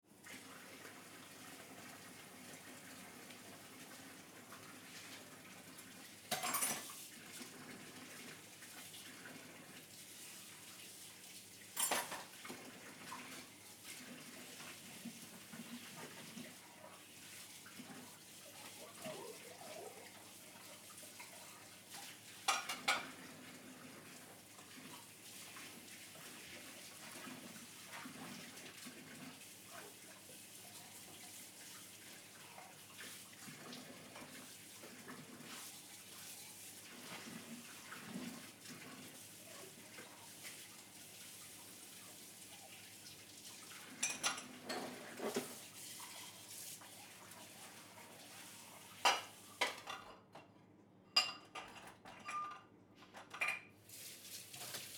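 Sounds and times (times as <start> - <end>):
washing dishes: 0.1 - 54.9.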